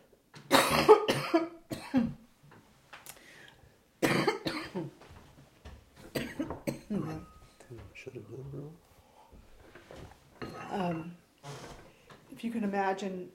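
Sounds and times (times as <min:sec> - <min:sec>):
harsh coughs: 0:00.5 - 0:02.2, 0:04.0 - 0:05.0, 0:06.1 - 0:07.3
brief breaths: 0:03.1 - 0:03.9, 0:08.9 - 0:09.8, 0:11.7 - 0:12.2
speech: 0:12.4 - 0:13.3.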